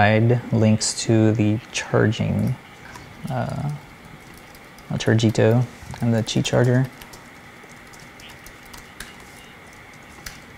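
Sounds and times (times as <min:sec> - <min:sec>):
speech: 0:00.0 - 0:02.6, 0:03.2 - 0:03.9, 0:04.9 - 0:07.0
typing notes on a computer keyboard: 0:03.2 - 0:10.5.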